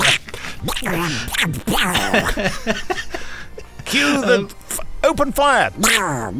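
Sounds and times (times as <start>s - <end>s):
cartoon duck voice quacking and squawking: 0.0s - 2.3s, 5.8s - 6.3s
laughter: 0.2s - 4.5s
speech: 0.8s - 3.0s, 5.2s - 6.3s.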